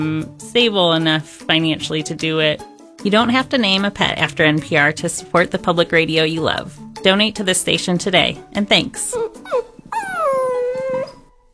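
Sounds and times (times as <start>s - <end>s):
speech: 0.0s - 9.7s
puppies whimpering and howling: 7.3s - 11.5s.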